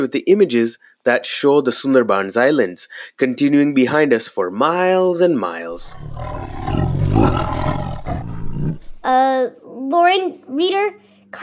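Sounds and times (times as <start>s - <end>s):
speech: 0.0s - 11.4s
tiger roaring: 5.7s - 9.0s.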